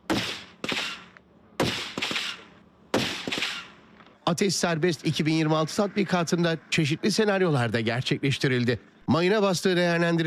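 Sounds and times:
sniper rifles firing at targets 600 to 1000 metres away during a military exercise: 0.0 - 4.1
speech: 4.3 - 10.2.

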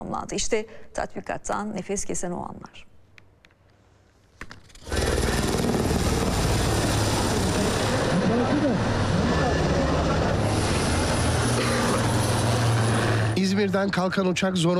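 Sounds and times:
speech: 0.1 - 2.9, 13.4 - 14.7
helicopter engine and rotor during a search and rescue drill: 4.7 - 13.4.

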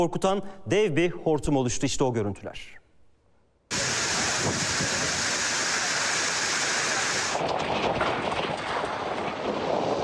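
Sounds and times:
speech: 0.0 - 2.8, 3.7 - 4.9
heavy downpour with hail and storm in Manisa: 3.7 - 10.0.

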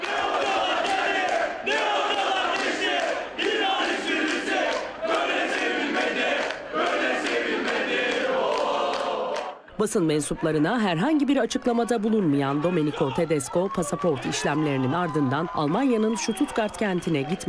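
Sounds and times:
football fans shouting in rhythmic phrases: 0.0 - 9.6
football fans chanting for their coach in a dense crowd at an airport: 0.0 - 17.4
speech: 9.8 - 17.4.

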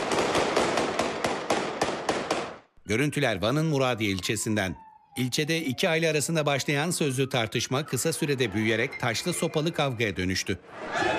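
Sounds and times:
police gunshots fired into the air: 0.0 - 2.7
speech: 2.9 - 11.1.

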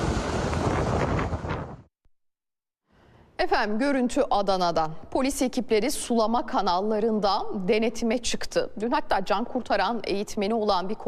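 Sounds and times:
roaring gusty wind from a tornado in Adana: 0.0 - 1.9
speech: 3.4 - 11.0.

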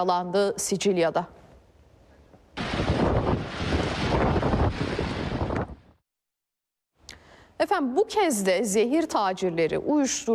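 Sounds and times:
speech: 0.0 - 1.4, 7.6 - 10.3
wind roaring from a waterspout tornado in Sicily: 2.6 - 6.0.

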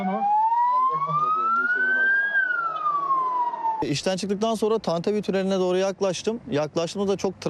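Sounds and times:
ambulance siren wailing in heavy traffic near a tunnel: 0.0 - 3.8
speech: 3.8 - 7.4.

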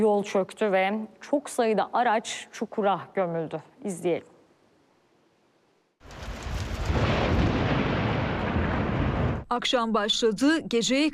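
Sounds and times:
speech: 0.0 - 4.3, 9.5 - 11.1
thunder during an evening-to-night downpour in Ankara: 6.0 - 9.5.

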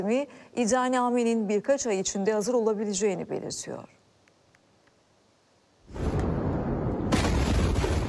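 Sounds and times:
speech: 0.0 - 4.0
port blast explosion in news footage: 5.9 - 8.0.

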